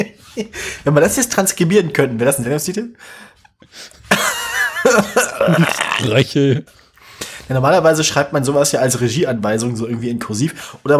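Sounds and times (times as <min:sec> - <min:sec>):
speech: 0:00.0 - 0:04.0, 0:04.9 - 0:06.8, 0:07.5 - 0:10.9
person coughing on purpose: 0:04.9 - 0:06.3.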